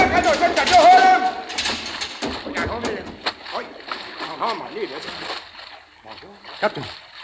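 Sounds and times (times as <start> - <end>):
several voices shouting: 0.0 - 1.7
water rushing down through a submarine conning tower hatch: 0.0 - 7.2
speech: 6.6 - 7.0.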